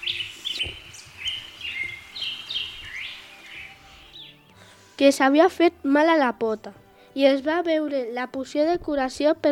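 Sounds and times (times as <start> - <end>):
bird chirping in short high tweets and trills: 0.0 - 4.5
speech: 5.0 - 9.5.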